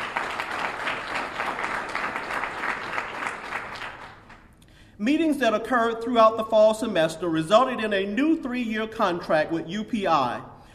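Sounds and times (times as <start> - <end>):
audience applause: 0.0 - 4.4
speech: 5.0 - 10.5.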